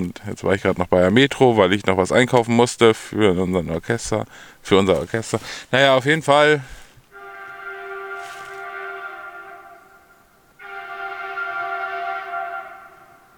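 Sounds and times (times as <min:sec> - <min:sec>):
speech: 0:00.0 - 0:06.8
train whistle blasts near a station: 0:07.1 - 0:13.3.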